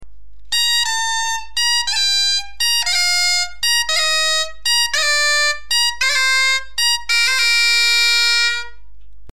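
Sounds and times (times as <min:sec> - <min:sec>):
bombarde playing an ornamented descending arpeggio: 0:00.5 - 0:08.8.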